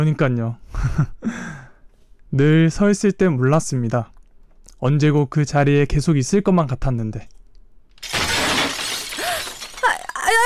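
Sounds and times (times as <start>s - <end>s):
speech: 0.0s - 1.6s, 2.3s - 4.1s, 4.8s - 7.4s
flower pot breaking while someone is cleaning: 8.0s - 10.3s
ceramic shards scattering and clattering: 8.0s - 10.4s.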